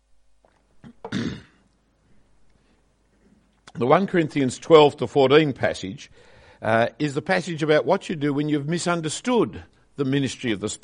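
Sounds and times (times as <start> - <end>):
loud harsh cough: 0.8 - 1.6
rough throat clearing: 0.8 - 1.7
speech: 3.8 - 10.8.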